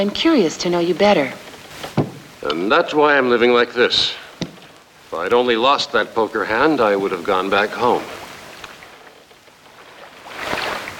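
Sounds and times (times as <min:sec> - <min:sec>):
speech: 0:00.0 - 0:04.2, 0:05.1 - 0:08.2
steady wash of water: 0:00.0 - 0:10.9
wind: 0:00.0 - 0:10.9
small dinghy drifting on the tide bumping a boat hull: 0:01.9 - 0:02.3, 0:04.4 - 0:04.7.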